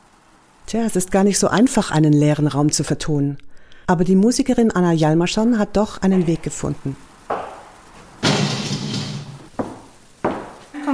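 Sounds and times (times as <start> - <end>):
speech: 0.7 - 7.1
doors knocking and thudding in an empty nightclub: 7.3 - 10.6.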